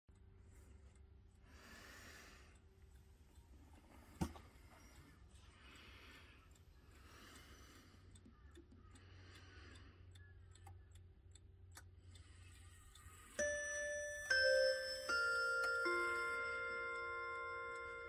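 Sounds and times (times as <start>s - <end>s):
table clock chime: 12.9s - 18.0s.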